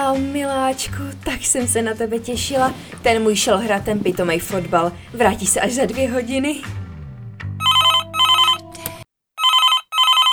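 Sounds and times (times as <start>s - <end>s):
speech: 0.1s - 6.8s
telephone ringing: 7.6s - 10.3s.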